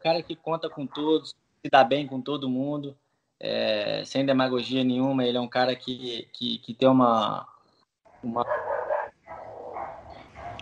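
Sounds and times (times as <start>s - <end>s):
speech: 0.0s - 7.5s, 8.2s - 8.8s
dogs barking and yapping: 0.6s - 1.2s, 8.2s - 10.5s.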